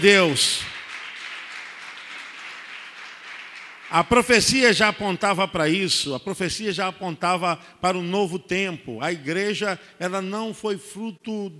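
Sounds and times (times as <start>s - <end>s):
speech: 0.0s - 0.7s, 3.9s - 11.5s
crowd of many hands applauding: 0.0s - 4.5s.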